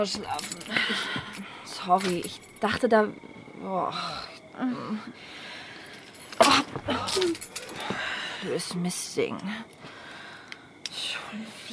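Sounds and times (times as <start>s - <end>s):
keys jangling as they are handed over: 0.0s - 2.7s, 5.9s - 7.8s
speech: 0.0s - 5.5s, 6.4s - 10.0s, 11.0s - 11.7s.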